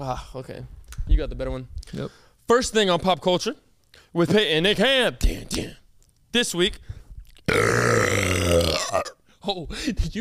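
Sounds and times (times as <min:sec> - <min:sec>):
speech: 0:00.0 - 0:10.1
long loud burp: 0:07.5 - 0:09.2.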